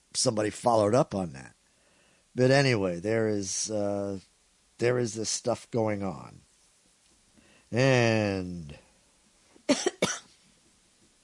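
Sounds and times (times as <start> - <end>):
speech: 0.2 - 1.6, 2.4 - 6.4, 7.7 - 8.8, 9.7 - 10.2
person coughing: 9.7 - 10.4.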